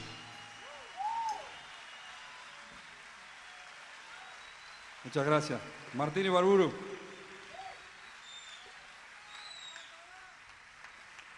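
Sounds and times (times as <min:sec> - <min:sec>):
whistles: 0:00.0 - 0:05.0, 0:06.8 - 0:10.2
crowd applauding: 0:00.0 - 0:11.3
speech: 0:05.0 - 0:06.9.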